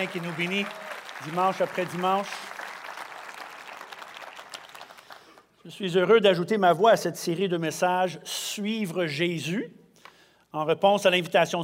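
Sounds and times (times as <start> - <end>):
speech: 0.0 - 2.5, 5.6 - 9.8, 10.5 - 11.6
church congregation applauding at a Sunday service: 0.0 - 5.5.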